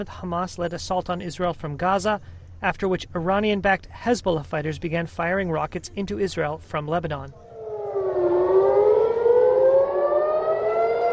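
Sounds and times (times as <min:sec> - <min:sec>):
speech: 0:00.0 - 0:07.5
air raid siren wailing: 0:07.4 - 0:11.1.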